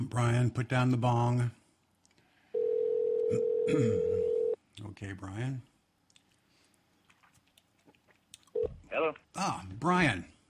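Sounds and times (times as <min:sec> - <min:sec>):
speech: 0:00.0 - 0:01.6, 0:03.3 - 0:04.2, 0:04.8 - 0:05.7, 0:08.9 - 0:10.3
telephone line electronic ring tone: 0:02.5 - 0:04.6.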